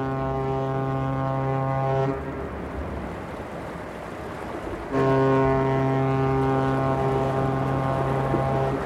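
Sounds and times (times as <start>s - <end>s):
ship's foghorn sounding long deep blasts: 0.0s - 2.4s, 4.9s - 8.8s
rushing wind: 0.0s - 8.8s
sea noise: 0.0s - 8.8s.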